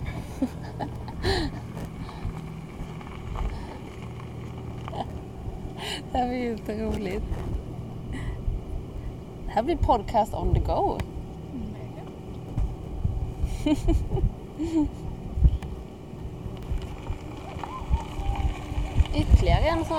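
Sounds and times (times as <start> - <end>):
car engine rumbling low and steady: 0.0 - 19.9
people laughing: 0.2 - 1.6, 13.5 - 15.0
speech: 0.4 - 1.5, 6.1 - 7.6, 9.6 - 11.1, 13.6 - 15.0, 19.4 - 19.9.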